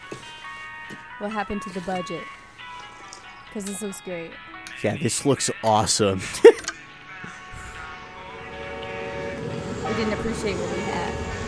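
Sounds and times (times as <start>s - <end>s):
speech: 1.2s - 2.4s, 3.6s - 6.6s, 10.0s - 11.3s
train rumbling past: 8.1s - 11.4s.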